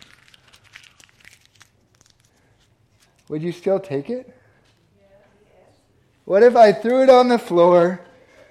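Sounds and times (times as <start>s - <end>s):
paper banknote crumpled in the hands: 0.0s - 3.4s
speech: 3.3s - 4.4s, 6.3s - 8.0s.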